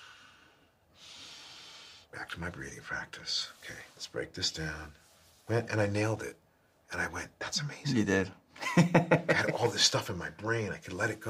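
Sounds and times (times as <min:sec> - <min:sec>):
deep breathing exercise breath: 0:00.0 - 0:02.1
speech: 0:02.3 - 0:11.2
laughter: 0:08.6 - 0:09.8.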